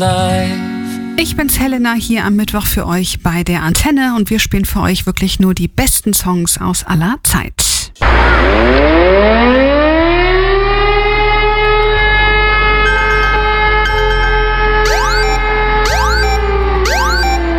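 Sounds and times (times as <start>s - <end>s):
speech: 0.0s - 0.6s, 1.2s - 7.8s
civil defense warning siren tested on nationwide warning day: 8.0s - 17.5s
low steady drone: 8.0s - 17.5s.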